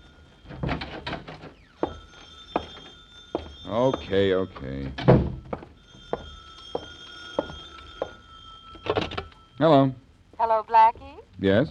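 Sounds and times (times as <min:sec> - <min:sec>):
telephone ringing: 0:00.0 - 0:11.0
speech: 0:03.7 - 0:05.3, 0:09.6 - 0:11.6.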